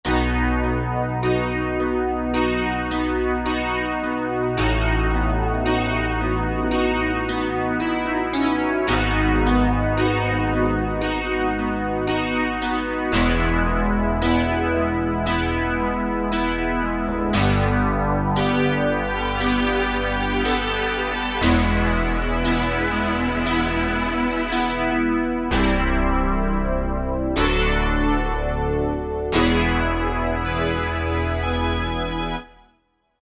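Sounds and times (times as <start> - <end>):
Roland JD-990 synthesizer factory patches: 0.1 - 32.6.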